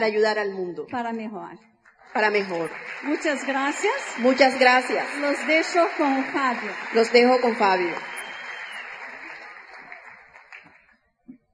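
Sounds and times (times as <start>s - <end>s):
speech: 0.0s - 8.1s
audience applause: 2.1s - 10.9s.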